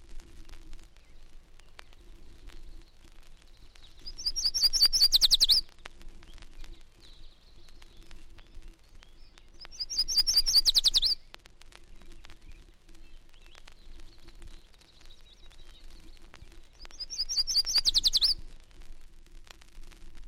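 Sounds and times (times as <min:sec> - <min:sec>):
yellow warbler singing from shrubbery: 0:03.5 - 0:05.6, 0:07.0 - 0:11.2, 0:12.4 - 0:18.4.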